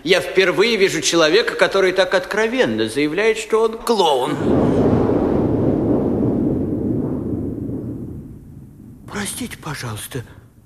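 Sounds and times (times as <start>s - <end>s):
speech: 0.0s - 5.0s, 9.4s - 10.5s
distant cannon fire: 4.5s - 9.3s.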